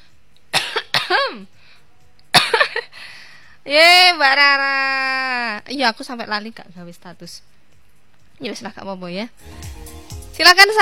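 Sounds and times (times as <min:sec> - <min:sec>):
person coughing: 0:00.5 - 0:01.5, 0:02.3 - 0:02.9
speech: 0:01.3 - 0:01.6, 0:03.6 - 0:07.6, 0:08.4 - 0:10.8.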